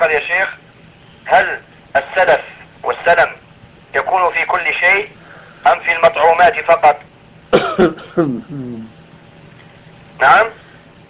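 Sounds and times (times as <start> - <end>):
speech: 0.0 - 3.4, 4.1 - 8.8, 10.2 - 10.6
man coughing: 7.5 - 8.8.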